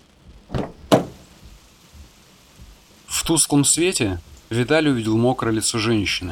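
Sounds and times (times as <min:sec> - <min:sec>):
car door opening: 0:00.5 - 0:01.4
speech: 0:03.3 - 0:06.3.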